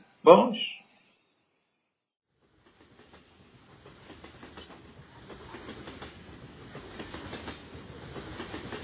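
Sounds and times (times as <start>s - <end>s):
speech: 0.2s - 0.8s
train wheels clattering on rails: 2.4s - 8.8s.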